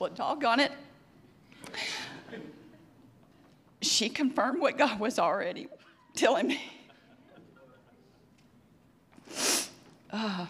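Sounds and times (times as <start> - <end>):
speech: 0.0 - 0.9, 4.0 - 6.8, 10.1 - 10.4
laughter: 1.6 - 3.0, 6.6 - 8.4
person sneezing: 9.2 - 9.8.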